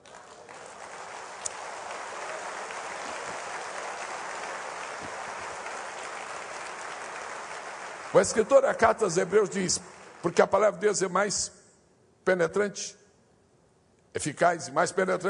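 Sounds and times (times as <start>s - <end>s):
sizable crowd applauding: 0.0s - 10.7s
speech: 8.1s - 11.6s, 12.2s - 13.0s, 14.1s - 15.2s.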